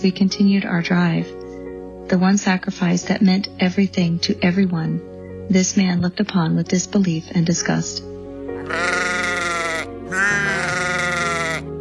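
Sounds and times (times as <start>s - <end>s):
speech: 0.0s - 1.4s, 2.1s - 9.2s
sheep bleating: 8.6s - 11.7s.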